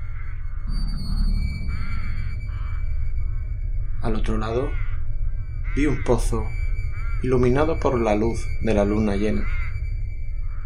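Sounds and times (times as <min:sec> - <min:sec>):
startled raven cawing: 0:00.0 - 0:10.6
steady low rumble: 0:00.0 - 0:10.6
speech: 0:04.1 - 0:04.9, 0:05.8 - 0:06.6, 0:07.2 - 0:09.6.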